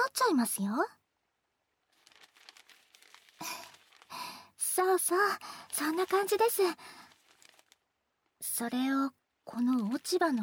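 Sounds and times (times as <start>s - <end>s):
speech: 0.2s - 1.0s, 4.8s - 7.0s, 8.4s - 10.4s
aluminum foil crinkling as it is wrapped around a wet sweet potato in wet newspaper: 1.9s - 7.8s.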